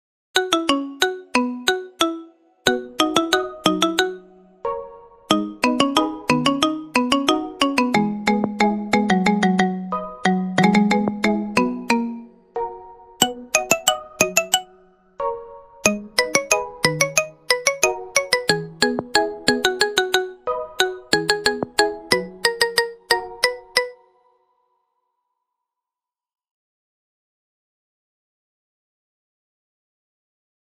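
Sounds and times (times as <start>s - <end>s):
marimba: 0.4s - 4.3s, 5.3s - 12.4s, 13.2s - 14.8s, 15.8s - 24.0s.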